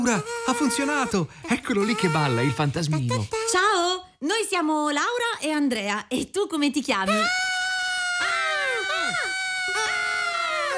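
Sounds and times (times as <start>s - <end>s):
speech: 0.0s - 7.4s
several people screaming high-pitched: 7.3s - 10.7s.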